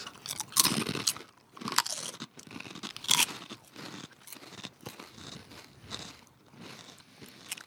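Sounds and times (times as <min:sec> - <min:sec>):
plain potato chip being bitten and chewed: 0:00.0 - 0:07.6.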